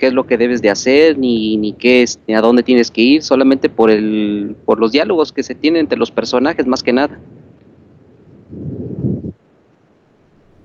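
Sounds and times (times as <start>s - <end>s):
speech: 0.0s - 7.4s
draft of wind buffeting the microphone: 0.0s - 10.6s.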